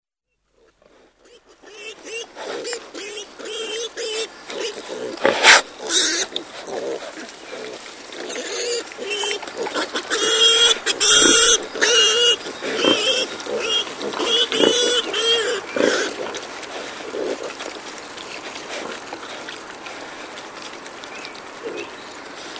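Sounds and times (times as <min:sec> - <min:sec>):
wild boar grunting and snuffling: 0:00.5 - 0:22.5
wild boar squealing: 0:00.6 - 0:17.7.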